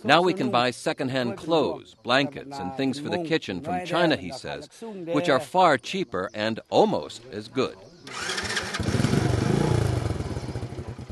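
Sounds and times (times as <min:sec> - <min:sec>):
speech: 0:00.0 - 0:08.6
Chinese motorcycle engine starting and idling: 0:08.1 - 0:11.0.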